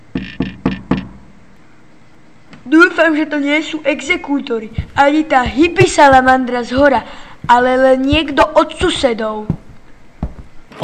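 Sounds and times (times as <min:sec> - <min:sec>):
knocking on a door: 0:00.1 - 0:01.2, 0:04.8 - 0:10.6
speech: 0:02.6 - 0:09.6.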